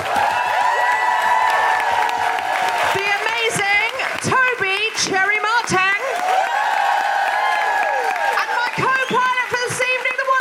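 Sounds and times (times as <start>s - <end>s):
crowd cheering with whoops and shouts: 0.0s - 4.2s, 6.0s - 10.0s
crowd applauding: 0.0s - 10.3s.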